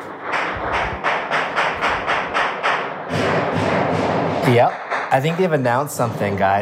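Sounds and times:
gunshots outside: 0.0 - 6.5
constant rumble: 0.0 - 6.6
speech: 4.5 - 6.6.

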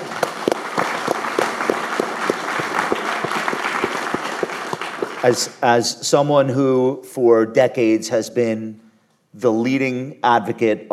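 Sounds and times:
audience of self-directed investors applauding: 0.0 - 5.5
speech: 5.2 - 10.9.

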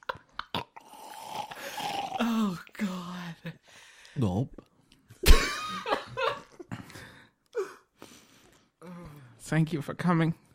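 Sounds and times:
person gulping and swallowing water: 0.1 - 2.7
speech: 2.2 - 5.9, 9.5 - 10.4.

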